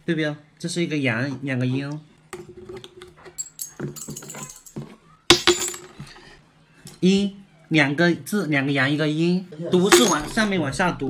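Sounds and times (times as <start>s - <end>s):
speech: 0.1s - 2.5s, 7.0s - 11.0s
three coins shaken and tossed for divination: 3.1s - 6.1s, 9.9s - 10.4s.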